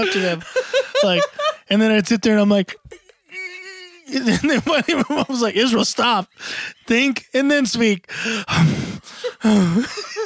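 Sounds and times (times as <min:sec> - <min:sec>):
laughter: 0:00.0 - 0:01.7, 0:04.1 - 0:07.2, 0:09.0 - 0:10.2
speech: 0:00.0 - 0:02.8, 0:04.1 - 0:10.2
person acting out heavy labored breathing: 0:06.3 - 0:06.9, 0:08.1 - 0:09.9.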